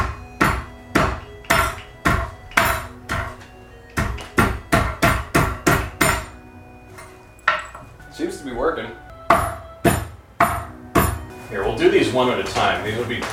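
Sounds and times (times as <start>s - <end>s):
nail hammer pounding steak flat: 0.0s - 6.4s, 9.3s - 11.4s
speech: 8.2s - 9.1s, 11.5s - 13.3s.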